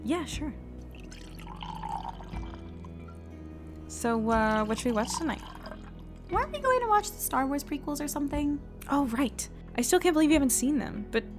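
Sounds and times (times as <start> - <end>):
speech: 0.0 - 0.7, 3.9 - 5.4, 6.3 - 11.3
wine pouring into a glass: 0.8 - 3.2, 4.4 - 6.3.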